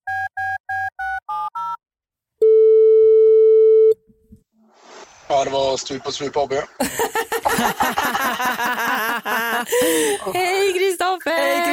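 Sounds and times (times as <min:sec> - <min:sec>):
long steady telephone tone: 0:02.4 - 0:04.0
speech: 0:05.4 - 0:11.7
laughter: 0:05.8 - 0:10.7.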